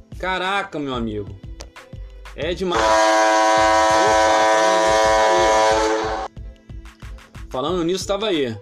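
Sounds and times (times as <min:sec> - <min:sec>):
speech: 0:00.2 - 0:01.4, 0:02.4 - 0:03.3, 0:07.6 - 0:08.6
ship's horn sustained low blast: 0:02.7 - 0:06.3.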